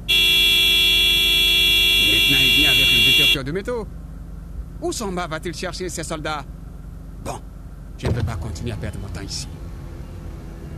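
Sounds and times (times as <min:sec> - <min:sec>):
car horn blaring: 0:00.0 - 0:03.5
speech: 0:03.3 - 0:04.0, 0:04.8 - 0:06.6, 0:07.2 - 0:09.6.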